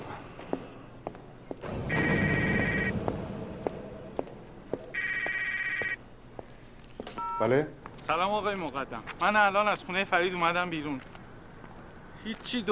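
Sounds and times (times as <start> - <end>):
telephone ringing: 1.9 - 2.9, 5.0 - 6.0, 7.2 - 7.5
speech: 7.4 - 11.1, 12.2 - 12.7.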